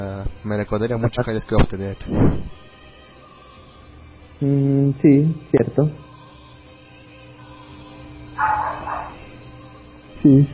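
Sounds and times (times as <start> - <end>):
speech: 0.0 - 2.5, 4.4 - 6.0, 10.2 - 10.5
faint steady hum: 0.0 - 10.5
dog barking in the distance: 8.4 - 9.4.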